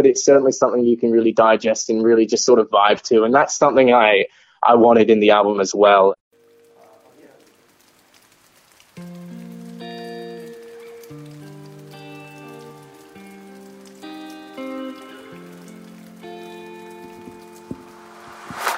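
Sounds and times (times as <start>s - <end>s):
speech: 0.0s - 6.2s
rain falling: 6.3s - 18.7s.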